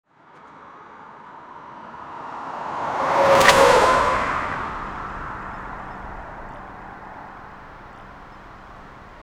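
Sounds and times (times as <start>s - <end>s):
supercar moving at high speed in a garage: 2.0s - 9.2s.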